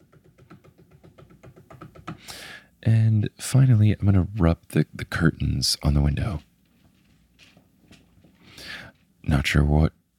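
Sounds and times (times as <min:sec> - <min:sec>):
fingers drumming on a wooden chair armrest: 0:00.0 - 0:02.3
speech: 0:02.5 - 0:06.5, 0:09.3 - 0:10.0.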